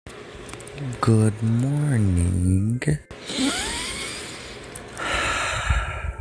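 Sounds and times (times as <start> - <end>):
speech: 0.8 - 3.2
deep inhale through the nose: 3.3 - 6.1.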